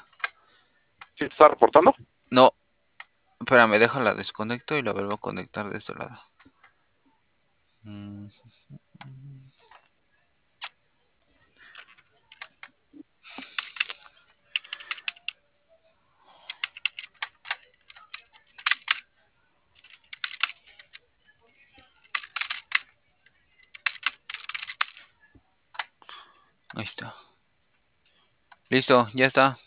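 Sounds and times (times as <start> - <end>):
speech: 1.2 - 2.6, 3.4 - 6.3, 7.8 - 9.3, 26.8 - 27.2, 28.7 - 29.6
typing on a computer keyboard: 11.7 - 12.7, 13.4 - 15.4, 16.4 - 19.0, 19.8 - 21.0, 22.0 - 22.9, 23.6 - 25.1.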